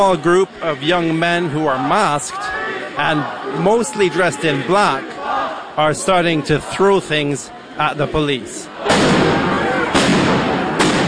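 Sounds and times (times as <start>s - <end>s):
speech: 0.0s - 5.2s, 5.8s - 9.6s
loud crowd noise of protesters: 0.0s - 11.0s
police tear gas canisters being fired at protesters: 8.9s - 11.0s.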